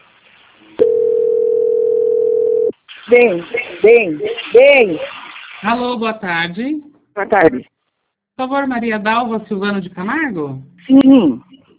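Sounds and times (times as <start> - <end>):
faint hiss: 0.0 - 1.7, 2.7 - 11.6
telephone line beep during a call transfer: 0.8 - 2.7
speech: 3.1 - 7.7, 8.4 - 11.6.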